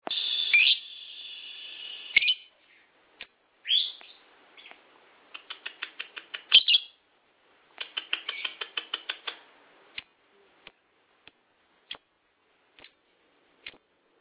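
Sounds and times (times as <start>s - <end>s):
lovebird chirping: 0.0s - 2.9s, 3.6s - 4.8s, 5.4s - 7.0s, 8.0s - 9.1s
sharp clicks: 4.7s - 6.6s, 7.8s - 9.4s.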